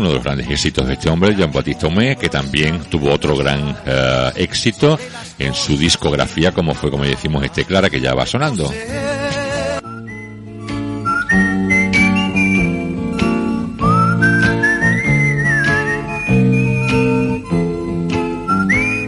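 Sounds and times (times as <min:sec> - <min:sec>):
speech: 0:00.0 - 0:09.1
clear high whistled melody in a song intro: 0:09.7 - 0:19.0.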